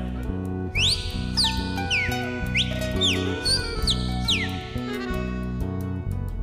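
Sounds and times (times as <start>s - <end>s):
instrumental music with strong bass line: 0.0s - 6.4s
whistled imitation of cardinal song: 0.7s - 5.1s.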